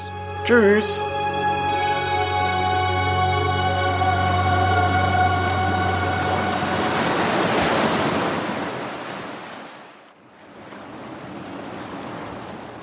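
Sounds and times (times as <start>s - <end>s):
sustained musical drone: 0.0s - 7.5s
speech: 0.5s - 1.2s
ocean waves breaking: 3.7s - 12.8s.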